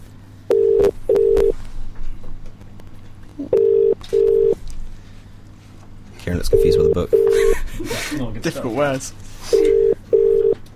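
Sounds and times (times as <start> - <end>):
low hum: 0.0 - 10.7
ringback tones of an outgoing phone call to a dental clinic: 0.5 - 1.5, 3.5 - 4.6, 6.5 - 7.4, 9.5 - 10.6
speech: 6.3 - 9.7
laughter: 7.3 - 8.5.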